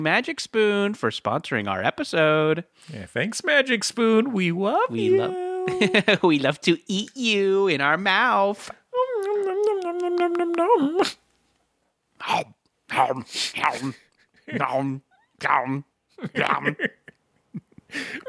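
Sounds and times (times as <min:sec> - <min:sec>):
speech: 0:00.0 - 0:08.8, 0:12.2 - 0:17.0, 0:17.9 - 0:18.2
person imitating a cat meowing: 0:04.9 - 0:06.0, 0:08.9 - 0:11.2
laughter: 0:05.0 - 0:06.3, 0:16.2 - 0:18.2.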